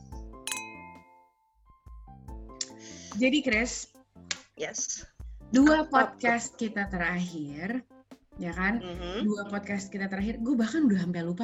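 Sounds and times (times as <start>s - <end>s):
glasses clinking in a toast: 0.5s - 1.4s
speech: 3.2s - 3.9s, 4.6s - 11.4s.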